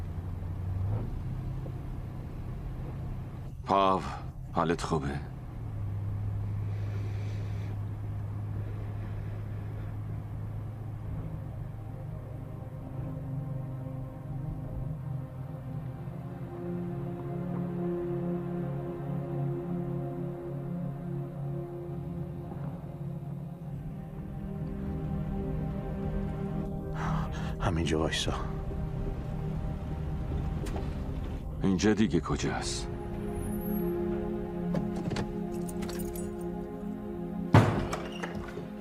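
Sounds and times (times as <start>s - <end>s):
car driving with steady low engine drone: 0.0s - 38.7s
speech: 3.7s - 5.3s, 27.9s - 28.5s, 31.6s - 32.9s.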